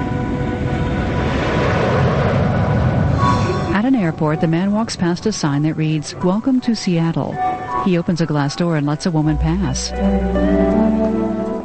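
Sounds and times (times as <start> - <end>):
jet aircraft flying overhead under a cloudy sky: 0.0 - 6.1
speech: 4.1 - 10.7.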